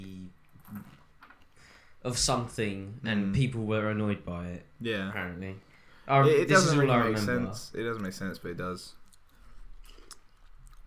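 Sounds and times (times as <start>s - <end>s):
low hum: 0.0s - 10.8s
speech: 2.0s - 9.0s
person chewing crunchy food: 9.0s - 10.8s.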